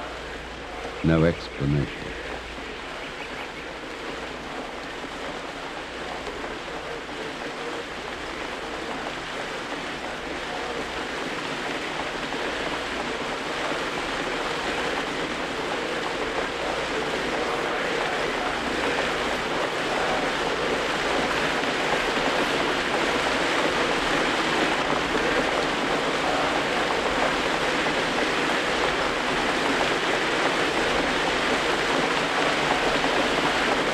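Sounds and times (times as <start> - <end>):
rain falling: 0.0 - 33.9
speech: 1.0 - 2.2.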